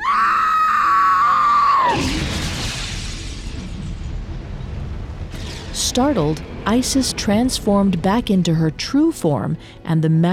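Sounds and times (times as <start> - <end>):
woman screaming in horror: 0.0 - 2.0
rough rushing burst of noise: 1.9 - 8.1
speech: 6.0 - 10.3.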